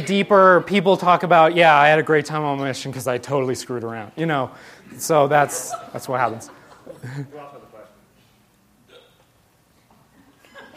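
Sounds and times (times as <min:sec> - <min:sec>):
speech: 0:00.1 - 0:07.6
laughter: 0:05.2 - 0:07.5
hiccup: 0:08.9 - 0:09.3.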